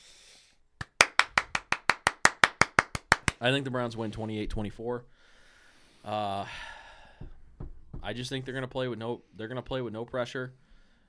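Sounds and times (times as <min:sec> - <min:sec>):
single person clapping hands: 0:00.8 - 0:03.5
speech: 0:03.4 - 0:05.1, 0:06.0 - 0:07.3, 0:08.0 - 0:10.6.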